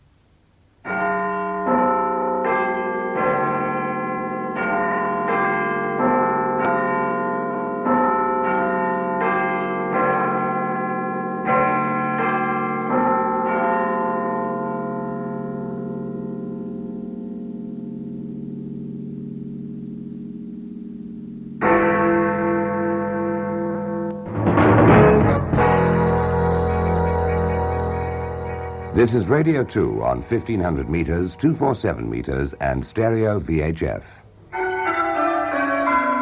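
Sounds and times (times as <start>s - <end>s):
chimes rung on church bells: 0.8s - 36.2s
speech: 29.0s - 34.2s.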